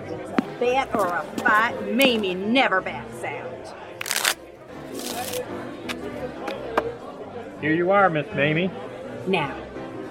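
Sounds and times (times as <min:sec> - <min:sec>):
low murmur of voices: 0:00.0 - 0:10.0
speech: 0:00.6 - 0:03.8, 0:07.6 - 0:09.6
deck of playing cards being shuffled for a high-card bet: 0:04.0 - 0:05.4.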